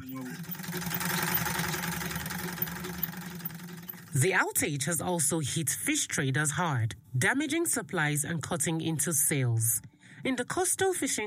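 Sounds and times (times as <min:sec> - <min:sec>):
pedal-operated sewing machine sewing school uniforms: 0:00.0 - 0:04.3
speech: 0:04.2 - 0:11.2.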